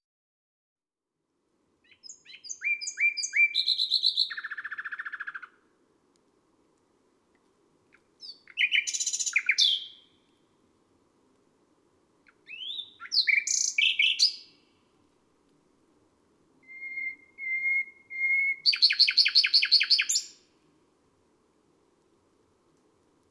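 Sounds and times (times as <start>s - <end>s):
nightingale singing on a May night: 1.8s - 5.6s, 7.9s - 10.4s, 12.2s - 14.8s, 16.6s - 20.5s.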